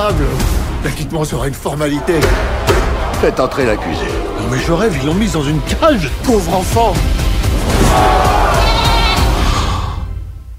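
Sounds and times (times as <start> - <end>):
speech: 0.0 - 8.2
goat bleating: 8.6 - 9.3.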